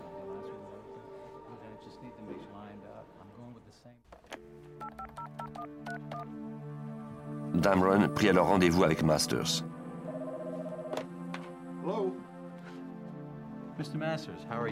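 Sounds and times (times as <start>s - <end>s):
touch-tone telephone keypad beeps dialing a number: 4.8s - 6.3s
speech: 7.6s - 9.8s, 13.8s - 14.6s.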